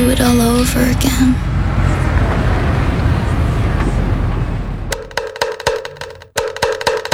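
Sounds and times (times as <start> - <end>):
steady road-like rumble: 0.0 - 6.4
kentongan bamboo slit drum being struck: 4.9 - 7.1.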